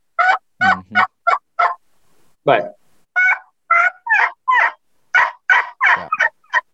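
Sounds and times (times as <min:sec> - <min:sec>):
person making closed-mouth vocal elk call yelps: 0:00.2 - 0:01.8, 0:03.2 - 0:06.6
speech: 0:02.5 - 0:02.8.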